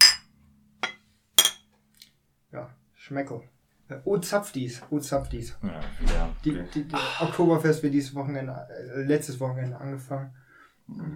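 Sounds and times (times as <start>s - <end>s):
glasses of beer clinking in a toast: 0.0s - 0.2s, 0.8s - 1.6s
speech: 2.5s - 11.1s.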